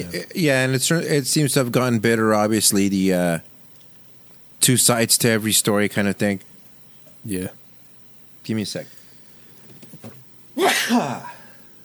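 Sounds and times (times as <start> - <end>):
speech: 0.0 - 3.5, 4.6 - 6.5, 7.2 - 7.6, 8.4 - 9.0, 10.0 - 11.4
loud sneeze: 10.6 - 11.5.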